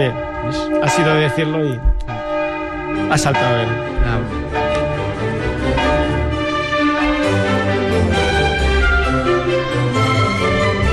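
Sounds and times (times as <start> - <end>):
speech: 0.0 - 2.1, 2.9 - 4.7
church bells ringing: 0.0 - 10.9.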